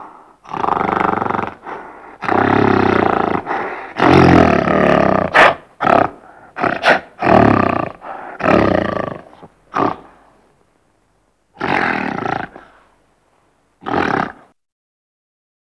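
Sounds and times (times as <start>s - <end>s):
gorilla giving loud harsh roars: 0.0s - 10.3s, 11.5s - 12.8s, 13.8s - 14.6s.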